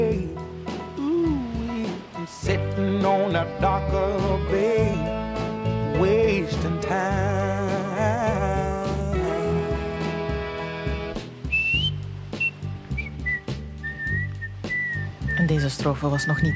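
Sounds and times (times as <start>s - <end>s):
soft soul band backing of bass, guitar and drums: 0.0s - 16.5s
whistled melody in a soul song: 11.4s - 16.5s
speech: 15.7s - 16.5s.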